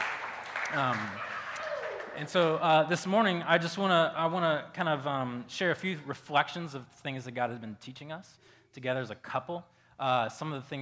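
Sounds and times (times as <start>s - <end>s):
audience clapping: 0.0s - 2.6s
speech: 0.7s - 1.4s, 2.2s - 10.7s.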